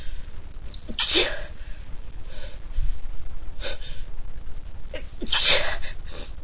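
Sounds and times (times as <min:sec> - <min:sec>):
person sneezing small sharp sneezes: 0:00.9 - 0:01.5, 0:05.3 - 0:06.0.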